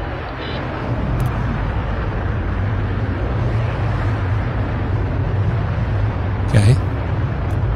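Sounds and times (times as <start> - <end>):
rocket engine firing after release from plane: 0.0 - 7.7.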